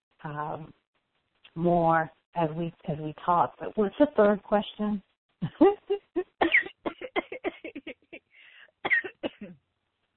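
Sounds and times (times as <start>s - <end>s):
speech: 0.2s - 0.8s, 1.6s - 5.8s
sputtering coughs from someone who choked on water: 6.4s - 7.9s, 8.8s - 9.6s
raspy breath: 8.3s - 8.8s.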